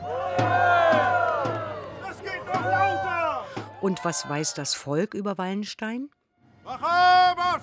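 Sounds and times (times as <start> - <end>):
crowd cheering and shouting outdoors at a historical town parade: 0.0 - 5.2
speech: 3.8 - 7.6.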